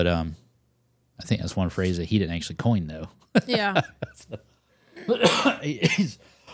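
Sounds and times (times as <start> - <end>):
speech: 0.0 - 0.4, 1.2 - 6.4
laughter: 3.3 - 6.2
harsh throaty coughs: 5.0 - 6.5.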